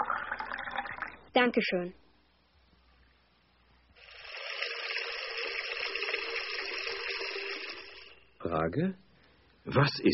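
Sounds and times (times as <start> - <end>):
water pouring into a glass: 0.0 - 1.3, 4.0 - 8.3
speech: 1.4 - 2.0, 8.5 - 9.0, 9.6 - 10.1.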